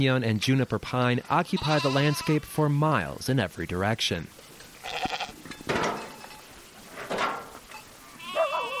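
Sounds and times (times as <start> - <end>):
speech: 0.0 - 5.2
Angora goats and churro sheep bleating in a makeshift corral on Black Mesa: 1.3 - 2.7, 4.7 - 5.6, 8.0 - 8.7.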